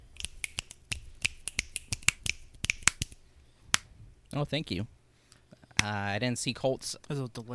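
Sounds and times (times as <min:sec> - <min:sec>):
finger snapping by several people: 0:00.2 - 0:03.9
speech: 0:04.4 - 0:05.0, 0:05.8 - 0:07.5.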